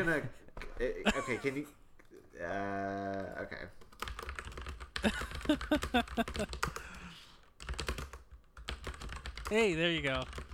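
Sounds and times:
speech: 0.0s - 1.8s, 2.4s - 3.8s, 5.0s - 6.9s, 9.5s - 10.5s
typing on a computer keyboard: 3.8s - 7.0s, 7.6s - 10.5s.

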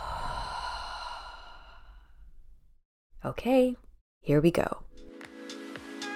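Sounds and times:
deep breath in through nose and out through mouth in a guided breathing exercise: 0.0s - 2.4s
speech: 3.2s - 5.0s.

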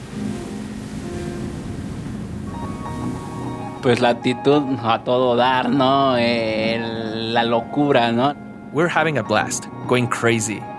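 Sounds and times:
ocean waves breaking on rocks at night in the moonlight: 0.0s - 6.4s
speech: 3.8s - 10.7s.

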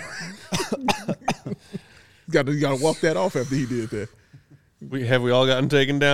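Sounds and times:
raspy chesty coughing fit: 0.0s - 1.8s
speech: 2.3s - 4.2s, 4.9s - 6.1s.

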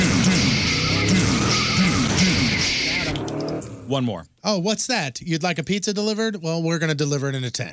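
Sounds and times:
car tires screeching in a skid to a stop: 0.4s - 3.9s
speech: 3.9s - 7.7s.

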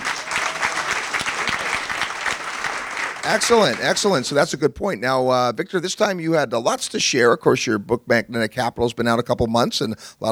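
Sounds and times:
audience applause: 0.0s - 4.4s
speech: 3.2s - 10.3s.

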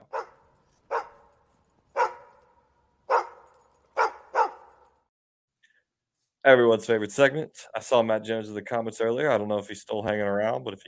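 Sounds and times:
dog barking: 0.0s - 1.3s, 1.9s - 4.8s
speech: 6.4s - 10.8s.

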